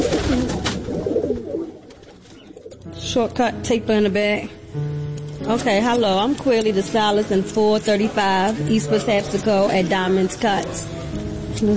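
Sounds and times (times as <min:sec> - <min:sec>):
pigeons cooing: 0:00.0 - 0:02.9
speech: 0:03.1 - 0:04.9, 0:05.5 - 0:11.0, 0:11.6 - 0:11.7.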